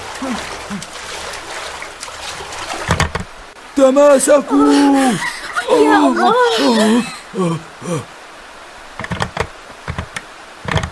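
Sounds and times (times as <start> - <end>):
oars rowing a boat with churning splashes: 0.0 - 8.0
strong river current rushing: 0.0 - 10.9
speech: 0.2 - 1.0, 3.8 - 8.1
brief indistinct voice fragments: 4.4 - 8.1.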